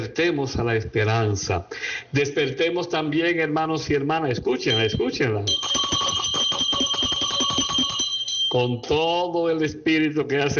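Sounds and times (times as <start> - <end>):
speech: 0.0 - 6.0, 8.5 - 10.5
bell ringing rapidly as a call to morning prayer: 4.7 - 9.0.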